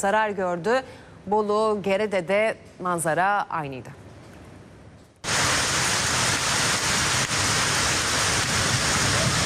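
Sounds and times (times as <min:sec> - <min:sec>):
speech: 0:00.0 - 0:04.0
heavy rain from a downpour in Gümüşhane in Turkey's Black Sea region: 0:05.2 - 0:09.4.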